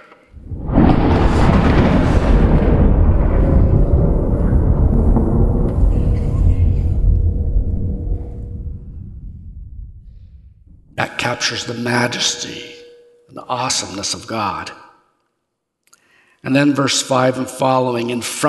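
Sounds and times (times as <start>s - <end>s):
loud crack of thunder rolling into deep rumble: 0.3s - 11.1s
speech: 11.3s - 12.7s, 13.5s - 14.8s, 16.4s - 18.4s.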